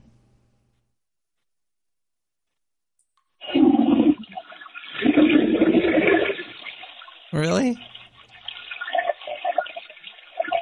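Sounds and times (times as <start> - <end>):
toilet flushing played back over a phone call: 3.4 - 10.6
speech: 7.4 - 7.9.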